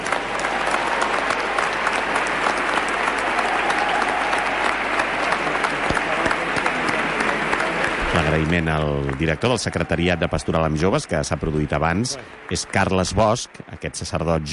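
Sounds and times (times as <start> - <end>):
large crowd applause echoing in a reverberant basilica: 0.0 - 14.5
speech: 8.4 - 14.5.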